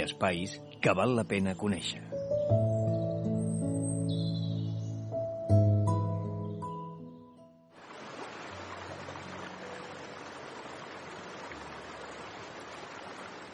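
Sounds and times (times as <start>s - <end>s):
speech: 0.0s - 2.7s
mellow sustained music: 0.0s - 12.6s
river water flowing: 7.8s - 13.5s.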